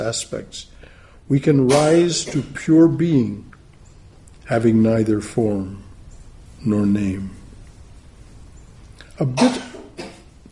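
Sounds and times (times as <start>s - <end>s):
speech: 0.0s - 3.5s, 4.5s - 5.9s, 6.6s - 7.4s, 9.2s - 9.7s
soft rasping exhale: 0.8s - 1.2s
throaty cough: 1.7s - 2.6s, 9.3s - 10.3s.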